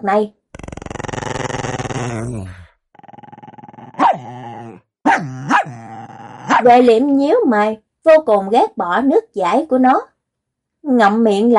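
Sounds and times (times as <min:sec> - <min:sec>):
speech: 0:00.0 - 0:00.4, 0:01.6 - 0:02.6, 0:04.2 - 0:06.0, 0:06.6 - 0:10.1, 0:10.8 - 0:11.5
big dog growling in a long rumbling snarl: 0:00.6 - 0:06.7
big dog barking fiercely: 0:04.0 - 0:04.4, 0:05.0 - 0:06.7.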